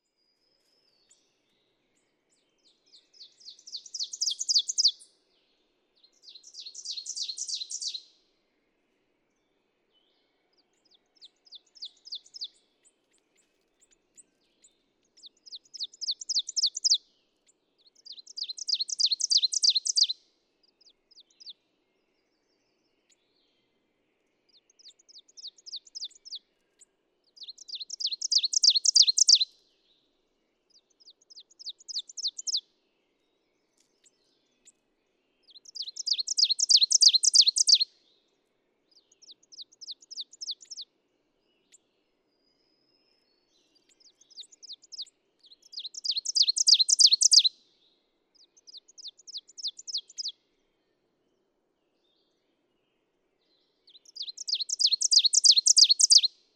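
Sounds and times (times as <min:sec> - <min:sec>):
ovenbird singing: 0:00.6 - 0:05.2, 0:06.0 - 0:08.1, 0:10.0 - 0:17.0, 0:17.8 - 0:21.6, 0:24.6 - 0:29.5, 0:30.7 - 0:32.6, 0:35.4 - 0:38.0, 0:38.9 - 0:40.9, 0:42.6 - 0:47.6, 0:48.4 - 0:50.4, 0:53.8 - 0:56.3.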